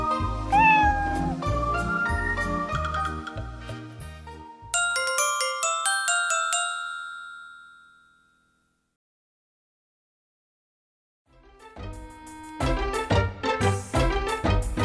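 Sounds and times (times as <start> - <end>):
cat meowing: 0.4 - 1.4
bouncy rhythmic music: 0.4 - 7.0, 11.6 - 14.8
bright chimes ringing: 4.8 - 8.4.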